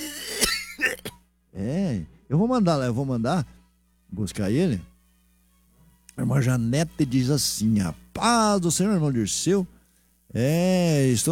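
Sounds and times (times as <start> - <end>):
person imitating an old man's raspy cough: 0.0 - 1.2
speech: 1.6 - 4.9, 6.2 - 11.2.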